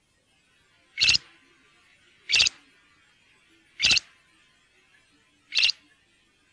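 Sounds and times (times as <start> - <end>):
great grey shrike uttering grating, scratchy calls: 1.0 - 1.2, 2.3 - 2.6, 3.8 - 4.0, 5.5 - 5.8.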